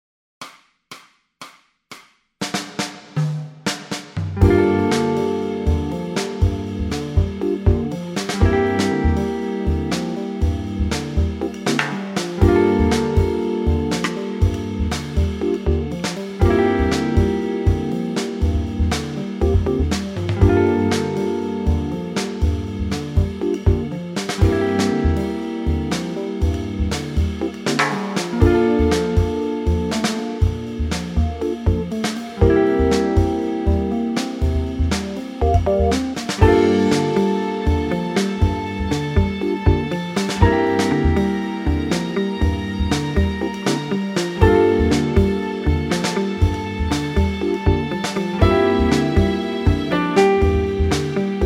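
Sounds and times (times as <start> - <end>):
bass backing track: 4.2 - 51.4.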